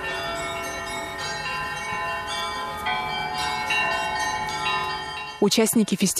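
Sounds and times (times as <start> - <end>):
church bells being rung by bell ringers: 0.0 - 6.1
speech: 5.4 - 6.1.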